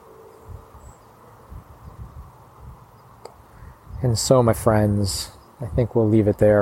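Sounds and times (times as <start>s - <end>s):
distant freeway traffic buzzing: 0.0s - 6.6s
faint click: 3.2s - 3.4s
speech: 4.0s - 6.6s.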